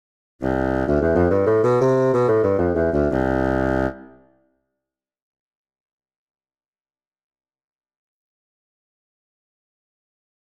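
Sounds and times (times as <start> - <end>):
bassoon: 0.4 - 4.2.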